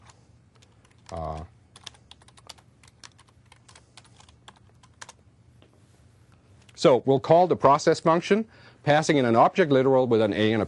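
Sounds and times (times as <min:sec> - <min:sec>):
person typing code on a computer keyboard: 0:00.0 - 0:05.2
speech: 0:01.1 - 0:01.6, 0:06.8 - 0:10.6.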